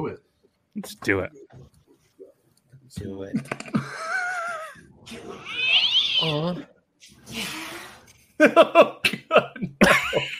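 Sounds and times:
speech: 0:00.0 - 0:01.7, 0:02.9 - 0:04.2, 0:05.1 - 0:07.6, 0:08.4 - 0:10.3
laughter: 0:03.3 - 0:04.9, 0:08.4 - 0:10.3
cat meowing in a played video: 0:05.1 - 0:06.6.

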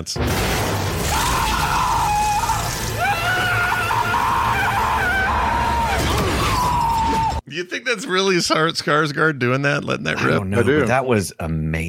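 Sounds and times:
speech: 0:00.0 - 0:01.3, 0:07.5 - 0:11.8
dense rumbling film soundtrack: 0:00.0 - 0:07.4
man screaming in a film clip: 0:01.1 - 0:07.4.

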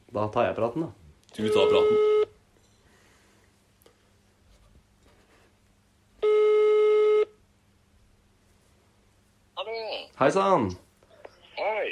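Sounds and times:
faint noise: 0:00.0 - 0:11.9
speech: 0:00.2 - 0:02.1, 0:10.2 - 0:10.8, 0:11.6 - 0:11.9
telephone ringback tone as a call is placed: 0:06.2 - 0:07.3.

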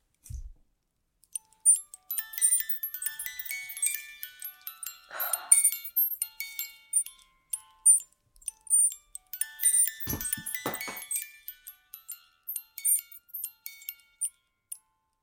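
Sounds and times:
small music box playing a slow tune: 0:01.3 - 0:15.2
brief low thumps or handling noises: 0:10.1 - 0:11.2.

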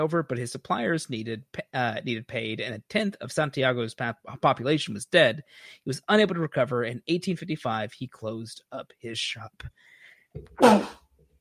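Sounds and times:
speech: 0:00.0 - 0:11.0
person sneezing: 0:10.6 - 0:11.0.

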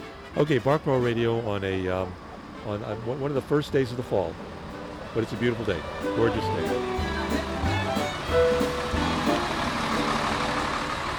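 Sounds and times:
large truck passing: 0:00.0 - 0:11.1
speech: 0:00.4 - 0:04.6, 0:05.2 - 0:06.9.

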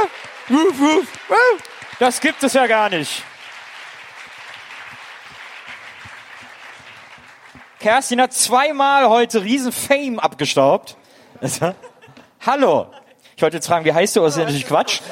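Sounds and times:
excited voice exclaiming: 0:00.0 - 0:01.7
speech: 0:00.0 - 0:03.3, 0:07.8 - 0:15.0
audience applause: 0:00.0 - 0:08.2
laughter: 0:11.4 - 0:13.2, 0:14.3 - 0:15.0.

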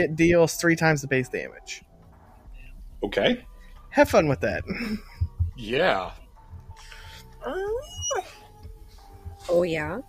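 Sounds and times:
speech: 0:00.0 - 0:01.9, 0:03.0 - 0:06.2, 0:07.4 - 0:08.3, 0:09.5 - 0:10.0
dog whimpering and yipping: 0:07.4 - 0:08.6.

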